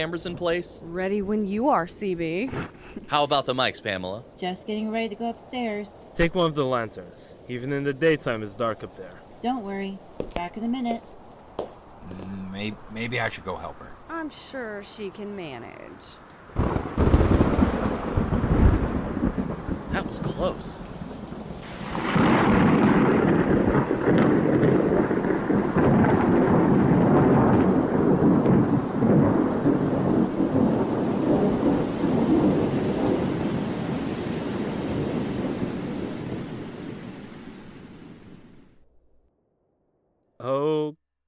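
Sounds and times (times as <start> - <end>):
speech: 0.0 - 11.2, 12.1 - 16.8, 19.9 - 21.0
heavy rain: 0.0 - 38.8
loud rolls of thunder: 16.5 - 38.6.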